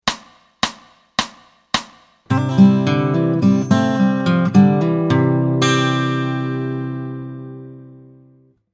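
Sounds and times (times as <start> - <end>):
open C chords played with fingers: 2.3 - 8.5.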